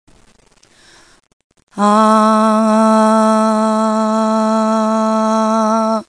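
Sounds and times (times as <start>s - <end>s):
human voice on the note A: 1.8s - 6.0s.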